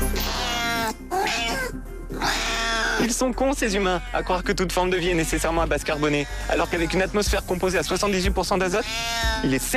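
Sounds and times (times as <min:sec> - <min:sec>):
cat meowing: 0:00.2 - 0:03.0, 0:08.8 - 0:09.5
speech: 0:03.0 - 0:09.7.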